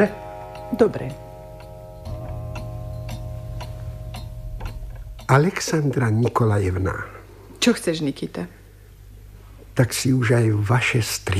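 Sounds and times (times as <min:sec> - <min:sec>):
speech: 0:00.0 - 0:01.2, 0:05.3 - 0:08.6, 0:09.8 - 0:11.3
just-repaired clock ticking: 0:00.0 - 0:06.9
low constant hum: 0:00.0 - 0:11.3.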